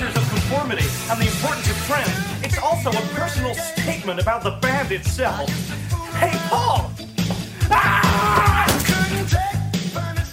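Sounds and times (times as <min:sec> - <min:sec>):
music: 0:00.0 - 0:10.3
speech: 0:00.6 - 0:06.9
man letting out a loud strained yell: 0:06.0 - 0:07.0, 0:07.6 - 0:09.3.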